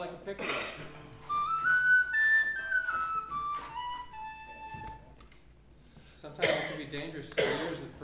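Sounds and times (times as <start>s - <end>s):
speech: 0.0s - 1.0s, 6.4s - 8.0s
wooden penny whistle playing a short bright melody: 1.2s - 5.3s.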